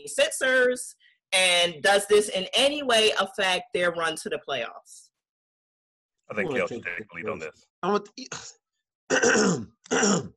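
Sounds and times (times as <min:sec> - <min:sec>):
speech: 0:00.0 - 0:05.0, 0:06.3 - 0:10.3
throat clearing: 0:08.3 - 0:10.3.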